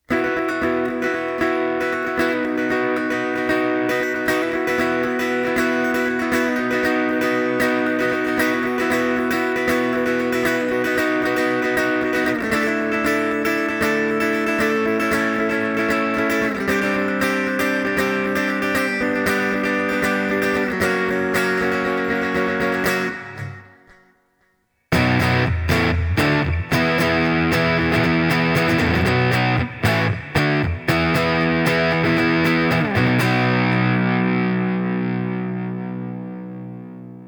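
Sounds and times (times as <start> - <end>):
Italia Mondial Classic semi-acoustic electric guitars doubled live: 0.1 - 24.0, 24.9 - 37.2.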